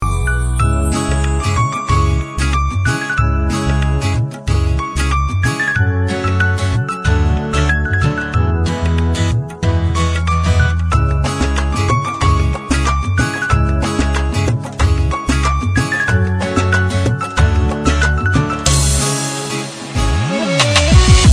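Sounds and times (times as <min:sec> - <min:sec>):
piano ringtone: 0:00.0 - 0:21.3
sitar ringtone: 0:00.0 - 0:21.3.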